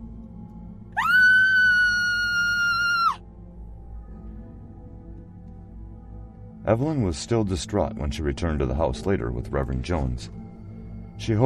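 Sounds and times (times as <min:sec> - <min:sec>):
woman screaming: 0:01.0 - 0:03.2
speech: 0:06.7 - 0:10.4, 0:11.2 - 0:11.4.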